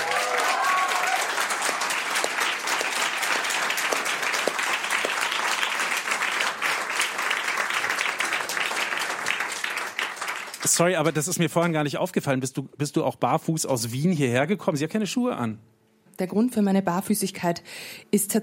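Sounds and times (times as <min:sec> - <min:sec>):
sustained audience applause welcoming a guest cellist and singer-songwriter: 0:00.0 - 0:11.4
speech: 0:10.7 - 0:18.4.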